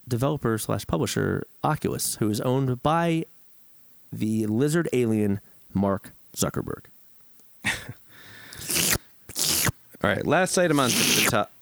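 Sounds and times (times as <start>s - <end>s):
speech: 0.1s - 3.4s, 4.1s - 6.9s, 10.0s - 11.5s
voice imitating loudly sipping water: 8.6s - 9.8s, 10.6s - 11.5s.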